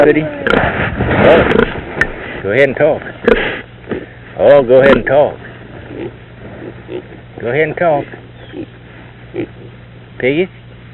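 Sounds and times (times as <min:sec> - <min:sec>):
speech: 0:00.0 - 0:01.7, 0:02.4 - 0:06.2, 0:06.9 - 0:08.7, 0:09.4 - 0:09.6, 0:10.2 - 0:10.6
low steady hum: 0:00.0 - 0:10.9
pig oinking: 0:01.3 - 0:01.8, 0:03.2 - 0:04.1, 0:05.9 - 0:07.2, 0:08.0 - 0:09.8.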